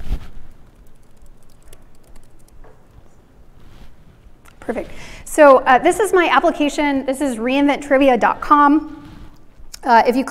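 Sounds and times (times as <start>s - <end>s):
fingers typing on a laptop keyboard: 0.5s - 2.6s
speech: 4.7s - 9.0s, 9.8s - 10.2s.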